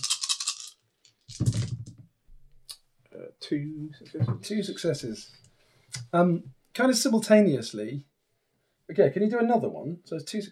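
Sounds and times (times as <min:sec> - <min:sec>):
dice rattling across a hard surface: 0:00.0 - 0:01.9
speech: 0:01.4 - 0:01.6, 0:03.5 - 0:05.4, 0:06.1 - 0:08.1, 0:08.9 - 0:10.5.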